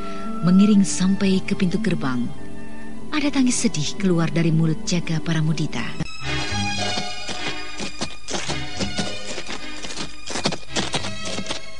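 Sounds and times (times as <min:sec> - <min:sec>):
continuous tonal background: 0:00.0 - 0:11.7
speech: 0:00.4 - 0:02.4, 0:03.2 - 0:06.0
horse hooves clip-clopping as horses walk: 0:06.2 - 0:11.7.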